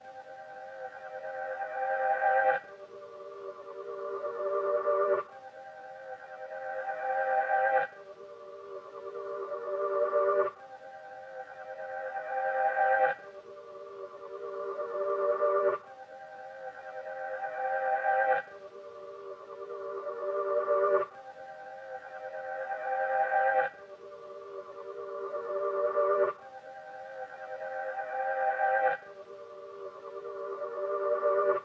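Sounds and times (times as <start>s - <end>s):
91 BPM G minor ambient music loop: 0.0s - 31.6s.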